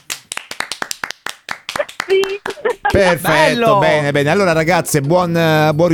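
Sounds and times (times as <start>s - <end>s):
hand claps imitating applauding knees: 0.0s - 3.1s
laughter: 1.8s - 4.0s
speech: 2.1s - 5.9s.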